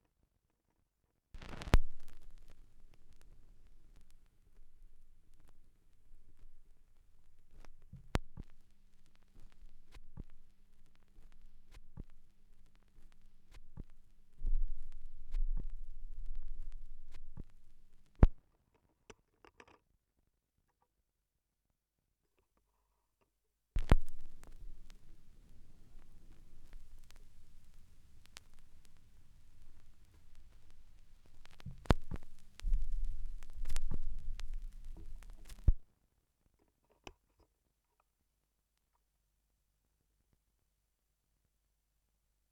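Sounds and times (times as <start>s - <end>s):
vinyl record noise: 1.4s - 18.5s, 23.8s - 35.9s.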